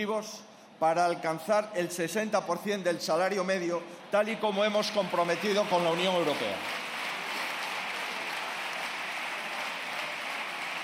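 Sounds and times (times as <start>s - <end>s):
speech: 0.0s - 6.8s
deputies and senators applauding in a parliamentary chamber: 4.6s - 10.8s.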